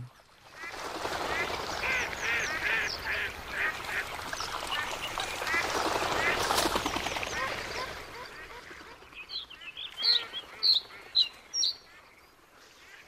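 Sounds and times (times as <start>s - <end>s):
ducks quacking in a winter lagoon wetland: 0.6s - 6.4s, 7.3s - 9.0s, 10.0s - 12.0s.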